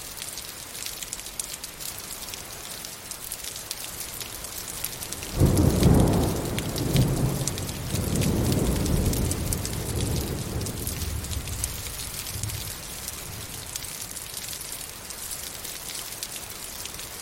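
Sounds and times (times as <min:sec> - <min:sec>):
steady rain of fine drops pattering on the ground: 0:00.0 - 0:17.2
deep roll of thunder: 0:05.3 - 0:12.9.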